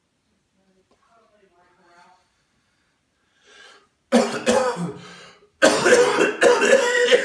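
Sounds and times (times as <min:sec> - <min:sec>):
raspy throat clearing: 0:04.1 - 0:05.0, 0:05.6 - 0:07.2
harsh phlegmy coughing: 0:04.1 - 0:07.2.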